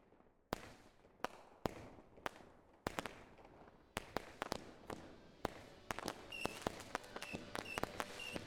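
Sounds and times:
fireworks banging: 2.9s - 8.4s
faint whistling and crackling of fireworks: 6.0s - 8.4s.

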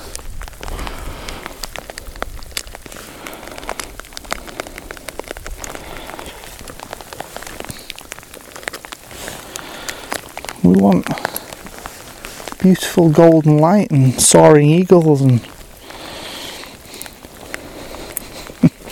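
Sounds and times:
steady rain pattering onto hard surfaces outdoors: 0.0s - 18.9s
speech: 10.7s - 11.4s, 12.6s - 15.6s.

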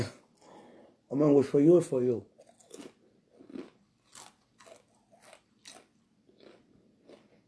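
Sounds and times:
speech: 1.1s - 2.9s
crunching and chewing snacks: 2.4s - 7.4s.

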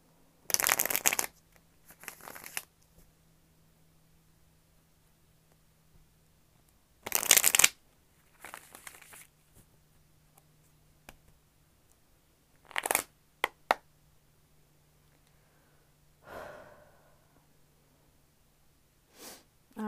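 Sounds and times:
deck of cards being shuffled during a card reading: 0.5s - 3.1s, 7.0s - 9.7s, 12.6s - 13.8s.

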